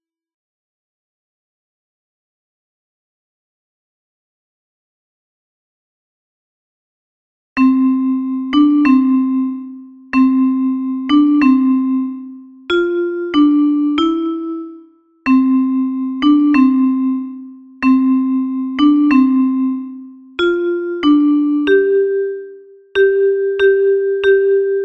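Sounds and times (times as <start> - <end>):
alto metallophone: 7.6 - 24.8.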